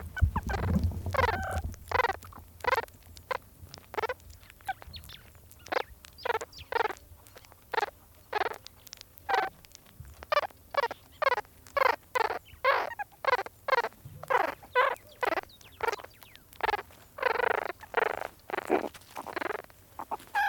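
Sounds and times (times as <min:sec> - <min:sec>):
meerkat pups chatting as they eat a scorpion: 0:00.0 - 0:20.4.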